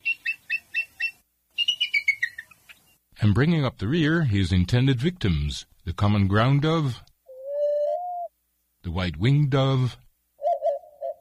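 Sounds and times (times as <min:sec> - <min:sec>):
bald eagle calling: 0:00.0 - 0:03.0, 0:07.2 - 0:08.3, 0:10.4 - 0:11.2
speech: 0:03.2 - 0:07.0, 0:08.8 - 0:10.0.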